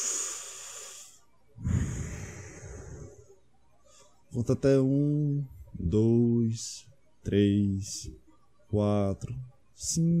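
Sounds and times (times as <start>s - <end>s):
deep breathing: 0.0s - 4.2s
speech: 4.4s - 10.1s.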